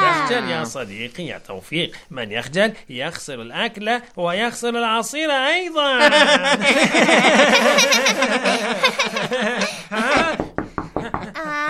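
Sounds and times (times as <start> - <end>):
speech: 0.3 - 10.6
laughter: 6.0 - 11.6
sharp knocks on a door: 10.0 - 11.4.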